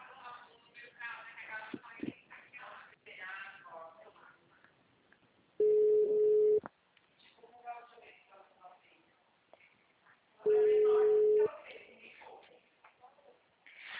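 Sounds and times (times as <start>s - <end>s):
telephone dialing tone: 5.6s - 6.6s
telephone ringback tones on a call to a bank branch: 5.6s - 6.6s, 10.5s - 11.5s.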